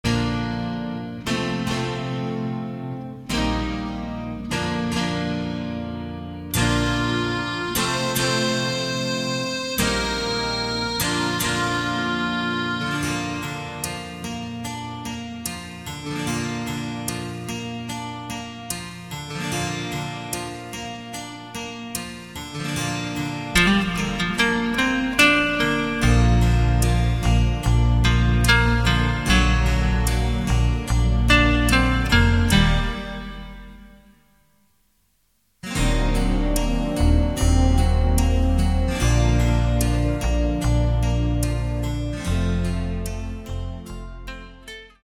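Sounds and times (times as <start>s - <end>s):
backing track music in B flat: 0.0s - 34.6s, 35.6s - 45.0s.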